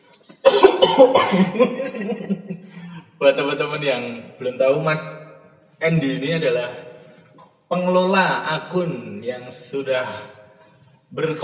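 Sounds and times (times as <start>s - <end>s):
person clearing throat raspily: 0.3s - 2.0s
person coughing: 0.4s - 2.2s
laughter: 1.0s - 3.2s
speech: 1.0s - 6.9s, 7.7s - 10.4s, 11.1s - 11.4s.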